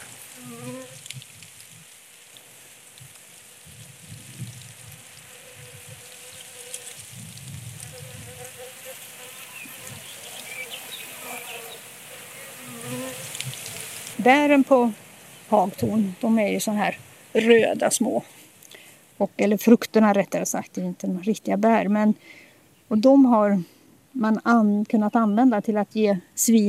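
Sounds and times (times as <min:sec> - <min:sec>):
individual bees passing: 0:00.0 - 0:01.1, 0:02.5 - 0:18.3
insects and bees buzzing in a flowering hawthorn: 0:00.0 - 0:19.6
steady outdoor hiss: 0:00.0 - 0:26.6
speech: 0:14.2 - 0:18.4, 0:19.2 - 0:26.6.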